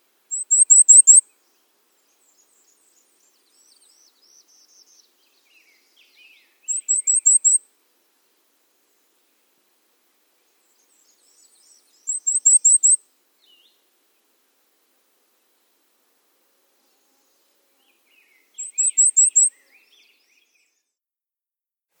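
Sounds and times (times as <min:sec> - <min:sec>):
Cape May Warbler singing: 0:00.3 - 0:07.6, 0:10.6 - 0:13.8, 0:17.2 - 0:20.8.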